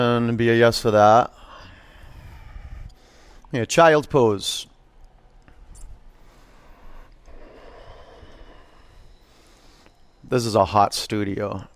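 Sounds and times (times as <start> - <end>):
speech: 0.0 - 1.4, 3.5 - 4.7, 10.3 - 11.7
nasal breathing during a hot yoga class in child's pose: 1.4 - 3.5, 6.2 - 10.1.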